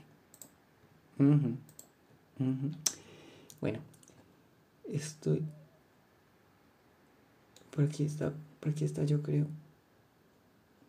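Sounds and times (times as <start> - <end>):
computer mouse clicking: 0.3 - 0.6, 1.7 - 1.9
speech: 1.2 - 1.7, 2.4 - 2.9, 3.6 - 3.9, 4.9 - 5.6, 7.8 - 9.6.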